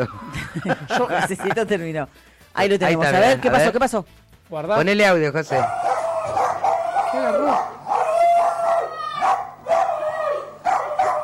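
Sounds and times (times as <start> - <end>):
laughter: 0.0 - 1.8
speech: 0.0 - 5.8, 7.1 - 7.8
dog howling: 5.5 - 11.2.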